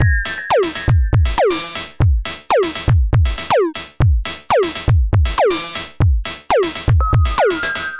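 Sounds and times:
120 bpm electro wistful bells: 0.0s - 1.8s, 7.0s - 7.9s
drum loops and breaks: 0.0s - 7.9s.

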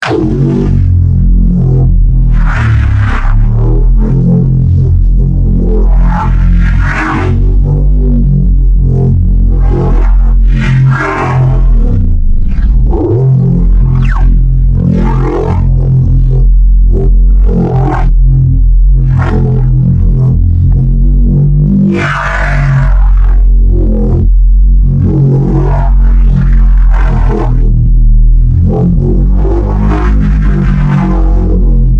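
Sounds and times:
gnarly sub-bass: 0.0s - 31.9s.

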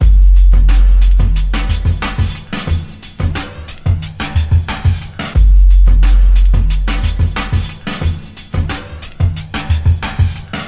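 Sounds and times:
heavy phased kick drum beat at 90 bpm: 0.0s - 10.6s.

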